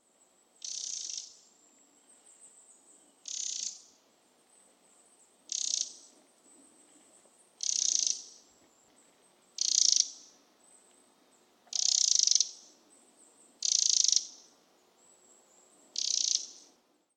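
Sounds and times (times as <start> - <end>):
Eurasian wren Troglodytes troglodytes singing: 0.6 - 1.5, 3.0 - 4.0, 5.5 - 6.1, 7.6 - 8.4, 9.6 - 10.4, 11.7 - 16.7.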